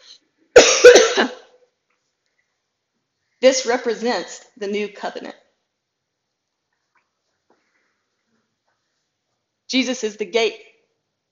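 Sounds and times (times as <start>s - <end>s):
person coughing: 0.6s - 1.6s
speech: 1.2s - 1.4s, 3.4s - 5.4s, 9.7s - 10.7s.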